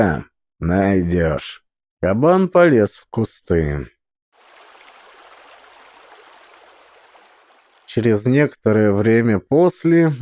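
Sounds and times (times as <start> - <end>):
speech: 0.0 - 4.0, 7.9 - 10.2
water flowing past a riverbank: 4.4 - 8.2.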